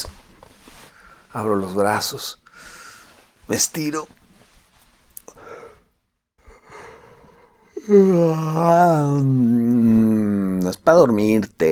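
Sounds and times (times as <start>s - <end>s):
soft breaths drawn in: 0.6s - 1.3s, 2.4s - 3.4s, 5.3s - 7.8s
speech: 1.3s - 2.8s, 3.5s - 4.2s, 7.8s - 11.7s.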